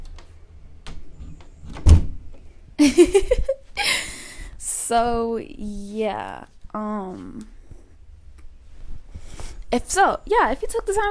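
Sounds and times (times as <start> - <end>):
door pushed shut with a solid low thump: 1.6 - 2.2
speech: 2.8 - 3.6, 4.9 - 7.6, 9.7 - 11.0
shuffling and squeaky handling noise: 5.0 - 11.0.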